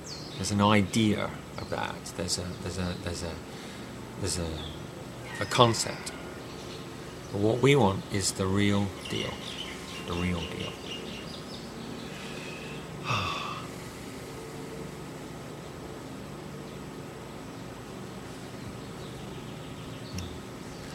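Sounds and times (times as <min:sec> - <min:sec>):
steady hiss of noise: 0:00.0 - 0:20.9
speech: 0:00.4 - 0:03.6, 0:04.2 - 0:04.8, 0:05.4 - 0:06.2, 0:07.3 - 0:10.9
sharp nasal breath intake: 0:12.0 - 0:14.2.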